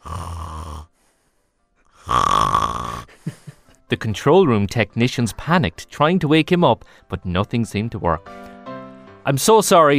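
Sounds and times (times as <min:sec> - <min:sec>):
soft snoring: 0:00.0 - 0:01.0, 0:02.0 - 0:03.1
speech: 0:03.9 - 0:08.5, 0:09.2 - 0:09.9.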